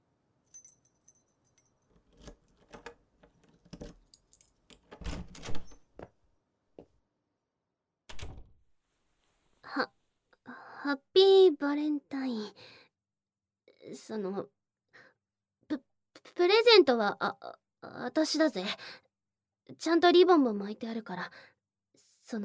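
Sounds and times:
brief metallic jingle: 0.5s - 1.8s
spare key rattling and clicking in a lock: 0.6s - 5.9s
door being opened with thunks and creak: 4.7s - 6.1s, 8.1s - 8.6s
speech: 10.9s - 12.7s, 14.0s - 14.6s, 16.9s - 17.5s, 18.1s - 19.0s, 19.8s - 21.5s, 22.3s - 22.4s.

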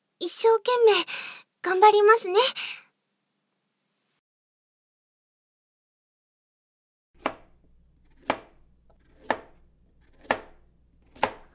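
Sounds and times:
speech: 0.2s - 2.8s
knife chopping meat into bite-size pieces on a cutting board: 8.2s - 11.5s.

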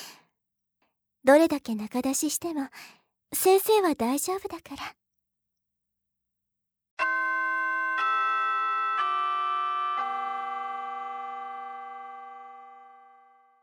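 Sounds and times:
speech: 1.2s - 5.0s
chime ringing bell tones: 7.0s - 13.6s.

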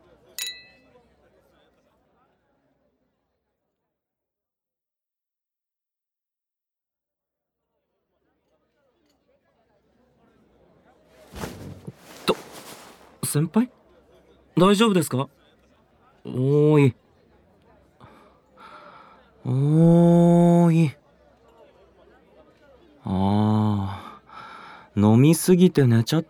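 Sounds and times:
glasses clinking in a toast: 0.4s - 1.0s
clattering movement: 11.2s - 13.3s
speech: 13.3s - 13.8s, 14.6s - 15.4s, 16.2s - 17.0s, 19.4s - 21.0s, 23.1s - 24.0s, 25.0s - 26.2s.

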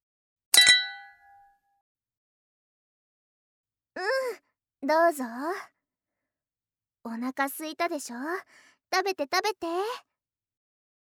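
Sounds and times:
glasses clinking in a toast: 0.6s - 1.4s
speech: 4.0s - 5.7s, 7.0s - 10.1s.

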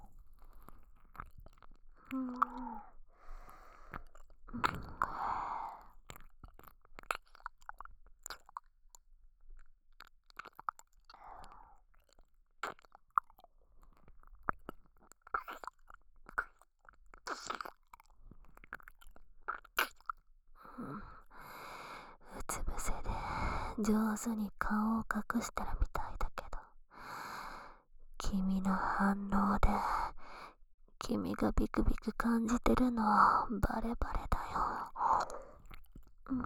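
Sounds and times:
wet ASMR mouth sounds of ear sucking and licking: 0.0s - 9.0s, 10.0s - 11.2s, 11.9s - 20.3s, 34.1s - 36.4s
breathy pauses: 2.0s - 4.1s, 4.8s - 5.9s, 11.1s - 11.8s, 20.6s - 22.3s, 23.0s - 23.8s, 26.9s - 27.9s, 29.8s - 30.6s, 34.5s - 35.7s
speech: 2.1s - 2.6s, 23.8s - 25.9s, 28.6s - 30.0s, 31.1s - 34.3s.

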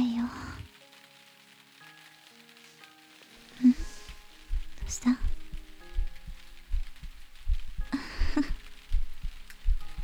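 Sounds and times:
soft rustling: 0.0s - 10.0s
slow heartbeat heard against the chest: 3.6s - 10.0s.

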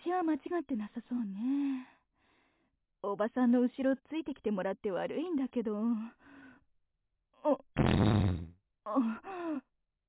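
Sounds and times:
speech: 0.2s - 2.0s, 3.0s - 6.3s, 7.4s - 9.7s
farting: 7.8s - 8.6s.

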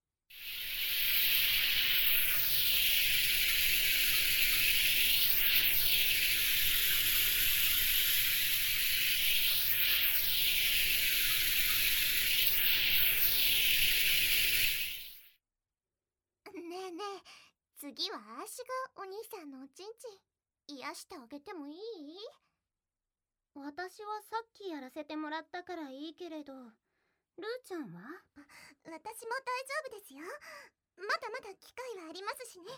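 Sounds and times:
shower water spraying to rinse a body: 0.3s - 15.3s
speech: 18.5s - 22.4s, 23.6s - 26.8s, 27.4s - 32.7s.

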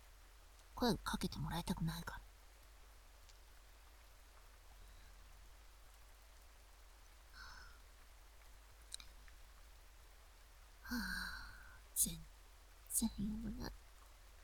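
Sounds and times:
steady rain falling: 0.0s - 14.4s
speech: 0.8s - 2.2s, 12.0s - 12.3s, 13.0s - 13.8s
person breathing and sighing: 7.4s - 7.8s, 10.9s - 11.8s.

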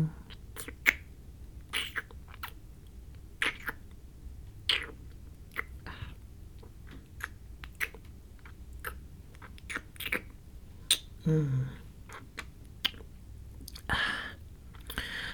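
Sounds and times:
ASMR mouth sounds of licking the right ear: 0.3s - 1.0s, 1.7s - 2.6s, 3.4s - 3.9s, 4.6s - 13.9s.

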